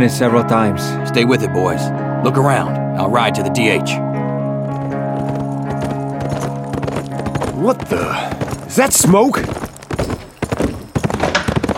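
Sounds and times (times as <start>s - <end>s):
speech: 0.0s - 4.1s, 7.6s - 9.6s
horse hooves clip-clopping while pulling a buggy: 4.6s - 11.7s.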